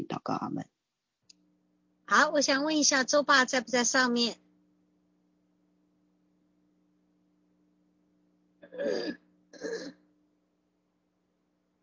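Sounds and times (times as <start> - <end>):
speech: 0.0 - 0.8, 2.1 - 4.4, 8.8 - 10.0
low steady hum: 0.0 - 11.8
coughing and throat clearing: 8.6 - 10.0.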